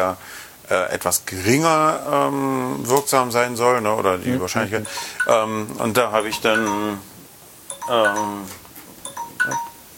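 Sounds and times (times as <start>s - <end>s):
speech: 0.0s - 7.1s, 7.9s - 8.6s, 9.4s - 9.7s
alarm clock ringing with electronic chiming tones: 4.8s - 7.0s, 7.7s - 9.9s.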